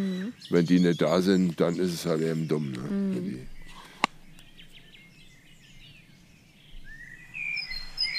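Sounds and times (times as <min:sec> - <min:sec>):
speech: 0:00.0 - 0:03.6
great tit singing outdoors: 0:00.0 - 0:08.1.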